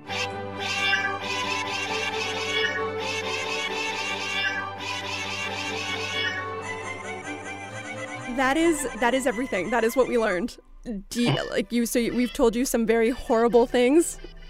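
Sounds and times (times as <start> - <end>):
many cats meowing: 0.1 - 7.6
speech: 8.4 - 14.3.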